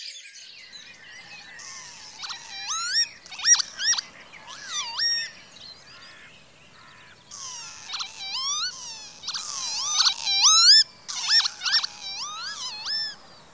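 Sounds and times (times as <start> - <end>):
Northern Lapwings calling: 0.7 - 13.5.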